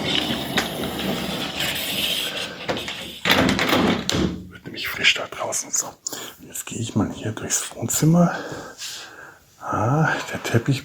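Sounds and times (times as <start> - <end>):
door handling rattling and scraping: 0.0 - 4.5
speech: 7.2 - 8.6, 9.7 - 10.8.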